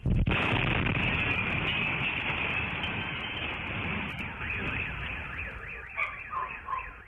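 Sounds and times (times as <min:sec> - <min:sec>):
gas tank explosion in residential building: 0:00.0 - 0:05.6
car alarm wailing: 0:01.0 - 0:07.0.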